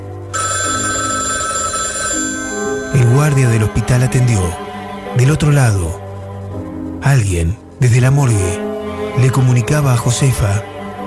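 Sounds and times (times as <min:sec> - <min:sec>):
low sustained humming tones: 0:00.0 - 0:11.0
telephone bell ringing in a hospital: 0:00.3 - 0:04.3
speech: 0:03.2 - 0:04.6, 0:05.2 - 0:08.6, 0:09.2 - 0:10.7.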